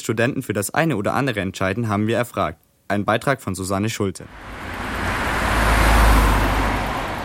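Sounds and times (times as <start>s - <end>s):
speech: 0.0s - 4.8s
dense morning rush-hour road traffic rumbling at a bridge intersection: 4.2s - 7.2s
vehicle passing by: 4.3s - 7.2s.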